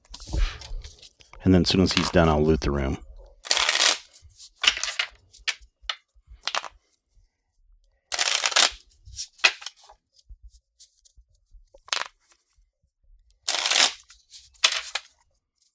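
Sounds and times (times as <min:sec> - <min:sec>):
speech: 0:01.4 - 0:03.1
playing cards being shuffled during a dungeon-crawl card game: 0:01.8 - 0:02.2, 0:03.4 - 0:06.9, 0:08.1 - 0:10.0, 0:11.8 - 0:12.4, 0:13.5 - 0:15.7.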